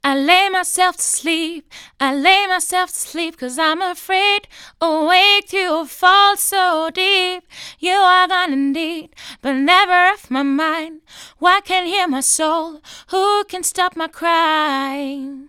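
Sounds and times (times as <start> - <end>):
dry female vocals: 0.0 - 15.4.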